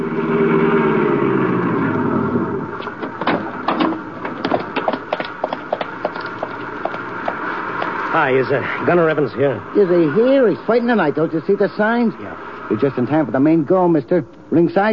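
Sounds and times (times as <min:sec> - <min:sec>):
car engine humming while driving out to an arena: 0:00.0 - 0:14.5
sharp clicks and clattering knocks: 0:02.8 - 0:07.9
speech: 0:08.2 - 0:14.9.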